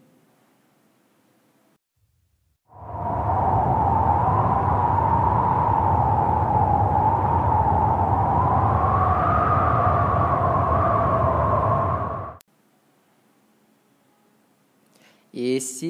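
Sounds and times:
wind rushing with a faint hollow whistle: 0:02.7 - 0:12.4
person speaking: 0:15.3 - 0:15.8.

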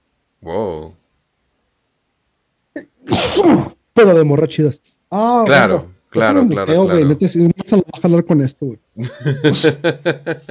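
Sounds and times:
speech: 0:00.4 - 0:01.0, 0:04.0 - 0:10.4
person sneezing: 0:02.8 - 0:03.8
laughter: 0:09.0 - 0:10.4.

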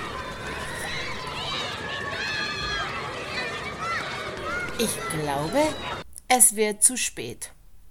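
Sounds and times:
children shouting and chattering in a schoolyard: 0:00.0 - 0:06.0
running feet in a schoolyard: 0:00.0 - 0:06.0
speech: 0:04.8 - 0:07.6.

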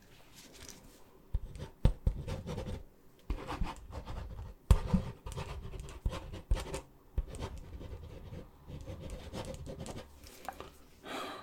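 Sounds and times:
handwriting with a pen on paper: 0:01.4 - 0:10.1.

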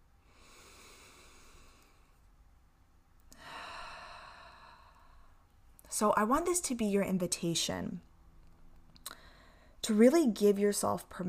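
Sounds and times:
deep breath during a guided relaxation: 0:00.2 - 0:02.3, 0:03.3 - 0:05.5, 0:09.1 - 0:09.8
speech: 0:06.0 - 0:08.1, 0:09.9 - 0:11.2.

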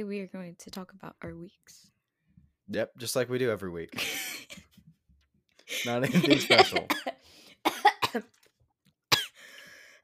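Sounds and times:
speech: 0:00.0 - 0:02.0, 0:02.7 - 0:04.8, 0:05.7 - 0:08.4
laughter: 0:03.9 - 0:04.6, 0:05.7 - 0:07.1
person coughing after inhaling potato: 0:05.8 - 0:08.3, 0:09.1 - 0:09.4.

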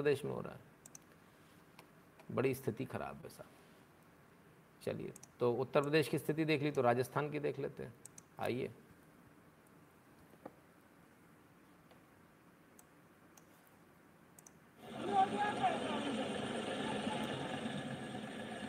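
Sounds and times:
speech: 0:00.0 - 0:00.7, 0:02.3 - 0:03.6, 0:04.8 - 0:08.8
tractor engine running while hauling a load: 0:14.8 - 0:18.6.

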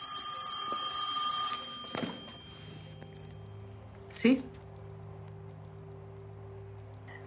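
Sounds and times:
telephone ringing in a home with an electronic trill: 0:00.0 - 0:03.7
speech: 0:04.2 - 0:04.5.

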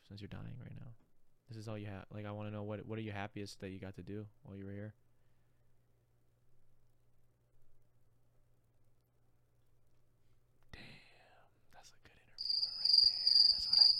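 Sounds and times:
speech: 0:00.1 - 0:05.0
cricket chirping sound effect: 0:12.4 - 0:13.9.

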